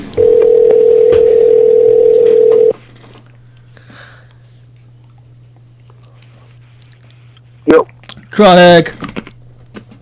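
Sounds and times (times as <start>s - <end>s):
faint low hum: 0.0s - 10.0s
telephone dial tone of an outgoing call: 0.2s - 2.8s
speech: 8.4s - 9.0s.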